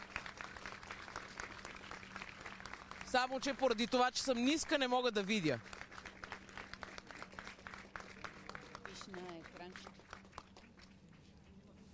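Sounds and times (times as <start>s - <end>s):
applause in a crowded hall: 0.0s - 11.0s
speech: 3.1s - 5.8s.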